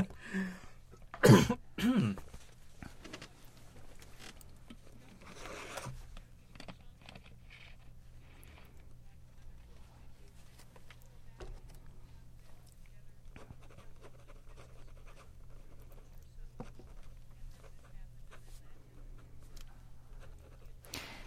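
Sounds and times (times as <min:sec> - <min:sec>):
low hum: 0:00.0 - 0:21.2
sharp loud coughs: 0:01.2 - 0:02.2.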